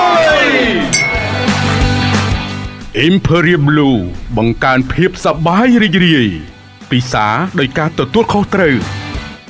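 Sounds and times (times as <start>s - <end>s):
glasses clinking in a toast over whisky drinks on ice: 0.9s - 2.4s
loud sustained tonal background: 1.0s - 6.5s
speech: 3.0s - 9.0s.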